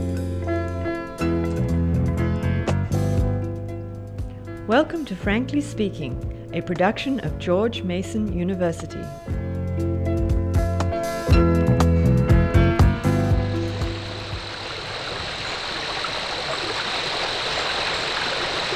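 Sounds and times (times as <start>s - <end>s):
plucked musical passage: 0.0s - 15.0s
stream water flowing: 0.0s - 18.7s
speech: 4.7s - 9.3s.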